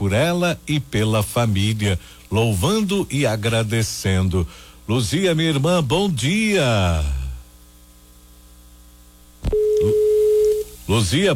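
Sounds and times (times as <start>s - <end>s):
speech: 0.0s - 7.2s, 10.9s - 11.3s
faint telephone line hum: 0.0s - 11.3s
steady electronic telephone tone from a failed phone call: 9.5s - 10.8s.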